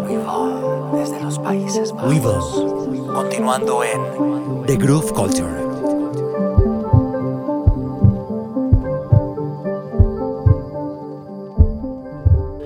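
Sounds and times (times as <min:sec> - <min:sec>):
sustained musical tones: 0:00.0 - 0:12.6
speech: 0:00.1 - 0:05.9
heartbeat sound effect thumping in lub-dub pairs: 0:06.5 - 0:09.4, 0:10.0 - 0:10.8, 0:11.6 - 0:12.6.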